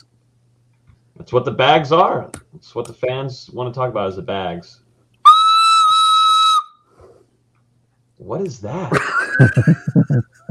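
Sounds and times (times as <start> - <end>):
speech: 1.2 - 4.8, 8.2 - 10.5
shrill steady note blown on a recorder: 5.2 - 7.1
laughter: 8.7 - 10.5.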